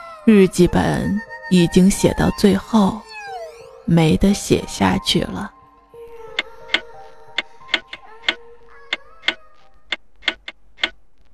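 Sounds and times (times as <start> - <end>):
soft sustained musical hum: 0.0 - 11.3
speech: 0.2 - 3.0, 3.9 - 5.6
wall clock ticking: 7.4 - 11.0.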